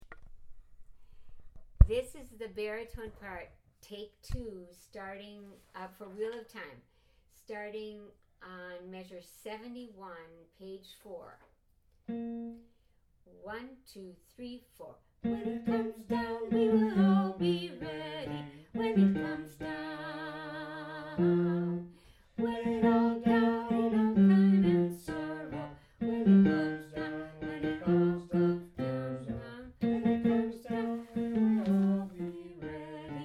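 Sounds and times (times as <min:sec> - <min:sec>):
baritone: 0:15.3 - 0:33.2.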